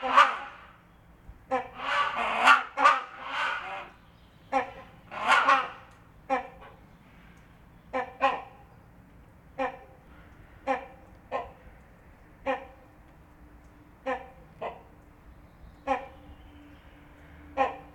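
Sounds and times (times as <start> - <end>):
Great Hornbill and Rhinoceros Hornbill honks and barks: 0.0 - 0.8, 1.5 - 6.7, 7.9 - 8.6, 9.5 - 10.0, 10.6 - 11.6, 12.4 - 12.8, 14.0 - 14.9, 15.8 - 16.2, 17.5 - 17.9.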